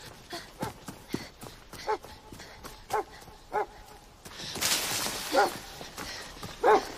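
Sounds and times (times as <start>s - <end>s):
dog barking in woods near a bird enclosure: 1.8s - 2.0s, 2.9s - 3.8s, 5.3s - 5.7s, 6.6s - 6.9s.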